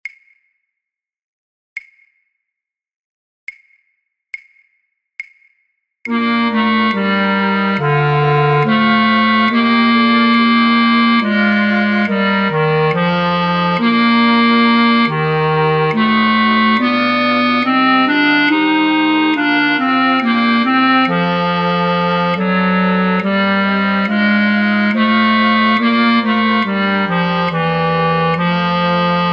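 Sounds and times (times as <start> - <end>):
bass flute: 6.1 - 29.3.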